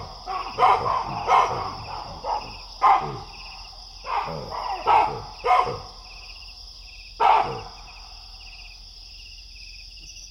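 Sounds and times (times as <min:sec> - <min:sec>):
baboons roosting in a big tree sounding alarm barks: 0:00.0 - 0:06.2, 0:07.1 - 0:08.2
steady high insect drone: 0:00.0 - 0:10.2.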